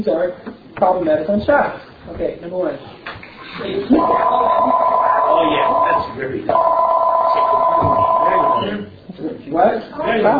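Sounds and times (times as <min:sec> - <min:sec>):
faint noise: 0:00.0 - 0:10.3
speech: 0:00.0 - 0:10.3
telephone ringing with a steady electronic tone: 0:03.9 - 0:08.8.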